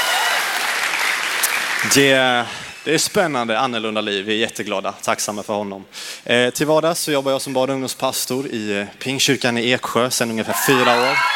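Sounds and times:
audience applauding: 0.0s - 2.9s, 10.5s - 11.3s
speech: 1.8s - 11.3s.

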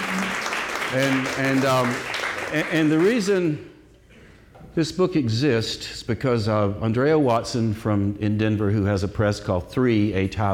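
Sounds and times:
audience applause at a book launch reading: 0.0s - 3.5s
speech: 0.9s - 3.7s, 4.8s - 10.5s.

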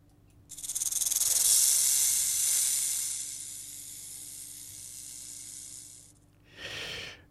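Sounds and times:
rattlesnake rattling: 0.5s - 6.2s.

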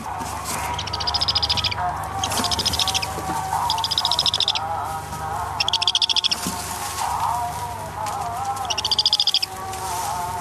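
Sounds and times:
birds calling in loud rapid bursts of high chattering: 0.0s - 10.3s
low hum: 0.0s - 10.3s
softer bird chirps: 0.6s - 4.7s, 5.6s - 6.4s, 8.6s - 9.5s.

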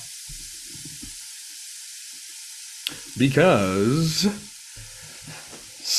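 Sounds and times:
meat sizzling on a grill: 0.0s - 5.9s
speech: 3.2s - 4.5s.

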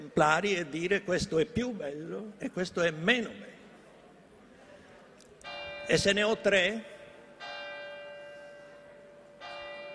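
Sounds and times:
speech: 0.2s - 3.6s, 5.9s - 6.9s
church bell striking the hour at 5 p.m.: 5.4s - 9.9s.

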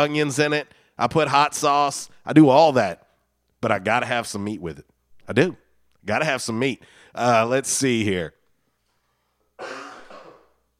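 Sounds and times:
speech: 0.0s - 3.0s, 3.6s - 8.4s, 9.6s - 9.8s
single forceful cough: 9.6s - 10.7s.

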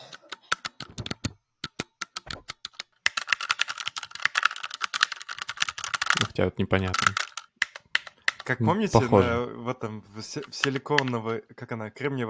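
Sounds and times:
loud mechanical keyboard typing: 0.0s - 8.5s, 10.4s - 11.2s
speech: 6.3s - 7.3s, 8.5s - 12.2s.

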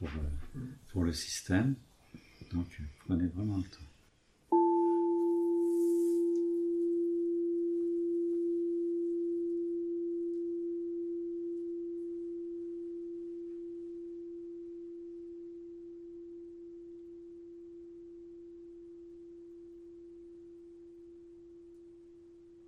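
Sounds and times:
speech: 0.0s - 1.9s, 2.5s - 3.9s
crystal singing bowl struck and ringing: 4.5s - 22.6s.

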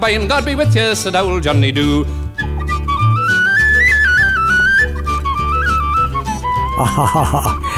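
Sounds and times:
speech: 0.0s - 2.2s, 6.8s - 7.7s
steady bouncing accompaniment of bass and rhythm: 0.0s - 7.7s
bright tin whistle playing a lively melody: 2.3s - 6.8s
laughter: 6.7s - 7.7s.

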